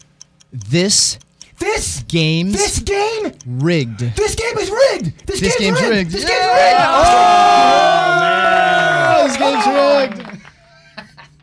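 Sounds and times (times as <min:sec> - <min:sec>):
countdown clock ticking in quick light clicks during a game: 0:00.0 - 0:08.0
speech: 0:00.5 - 0:10.2.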